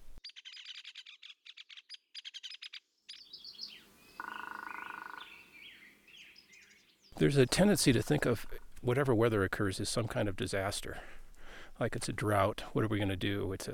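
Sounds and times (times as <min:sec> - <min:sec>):
bright rapid pulsed bird notes: 0:00.0 - 0:07.1
hairy woodpecker sharp high peek calls: 0:00.2 - 0:07.2
speech: 0:07.2 - 0:11.2, 0:11.8 - 0:13.7.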